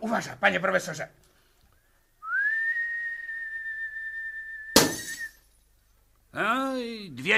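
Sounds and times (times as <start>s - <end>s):
speech: 0.0s - 1.3s, 6.4s - 7.3s
steady sustained high whistle: 2.2s - 5.4s.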